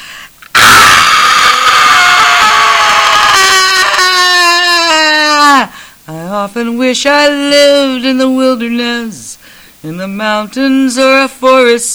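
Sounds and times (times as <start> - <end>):
baby screaming and crying: 0.5 - 5.7
speech: 6.4 - 11.9.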